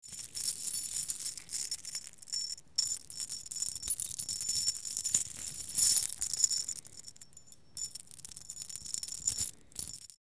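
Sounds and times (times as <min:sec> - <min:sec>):
tiny chain moving and rattling: 0:00.0 - 0:10.2.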